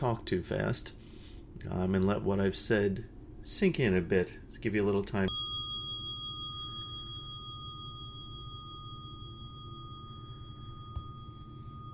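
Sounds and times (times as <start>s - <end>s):
speech: 0.0s - 1.0s, 1.6s - 5.3s
mindfulness bell ringing: 5.3s - 11.9s.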